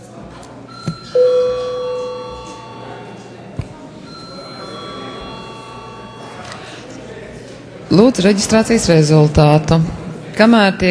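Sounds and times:
bell ringing to call a parliamentary session to order: 0.7s - 6.8s
speech: 7.9s - 10.8s.

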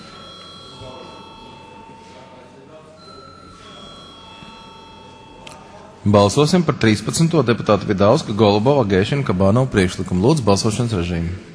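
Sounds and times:
parliament bell ringing before a vote: 0.0s - 8.8s
faint murmur of voices: 0.0s - 11.5s
speech: 6.0s - 11.5s.

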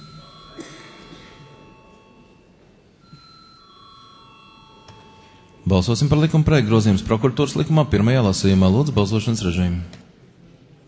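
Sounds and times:
parliamentary voting bell ringing before a vote on a bill: 0.0s - 2.4s, 3.0s - 6.9s
low murmur of room noise: 0.0s - 10.8s
speech: 5.7s - 10.0s.

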